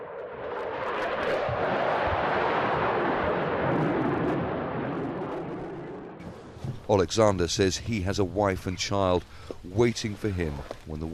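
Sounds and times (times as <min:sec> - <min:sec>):
jet fighter screaming overhead: 0:00.0 - 0:08.7
speech: 0:06.9 - 0:11.1.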